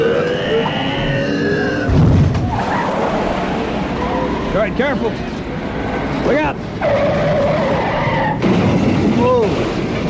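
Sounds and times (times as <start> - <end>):
car tires squealing in a skid: 0.0 - 4.5, 6.8 - 9.0
dense rumbling noise: 0.0 - 10.0
speech: 4.7 - 5.3, 6.3 - 6.9.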